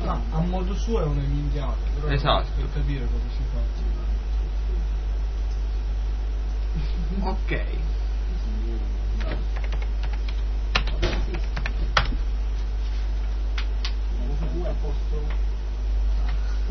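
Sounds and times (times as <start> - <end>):
low hum: 0.0 - 16.6
speech: 0.2 - 4.2, 6.8 - 9.4, 14.5 - 15.5
typing on a computer keyboard: 9.2 - 12.1.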